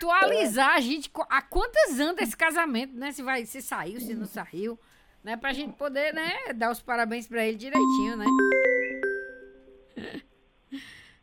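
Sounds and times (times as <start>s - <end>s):
speech: 0.0s - 8.8s, 10.0s - 11.0s
phone ringing with a short electronic chime: 7.8s - 10.0s.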